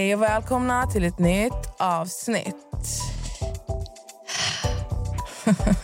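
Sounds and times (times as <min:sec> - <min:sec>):
speech: 0:00.2 - 0:03.0, 0:05.5 - 0:05.8
heavy breathing right against a microphone in a studio: 0:02.8 - 0:05.6
laughter: 0:05.3 - 0:05.8.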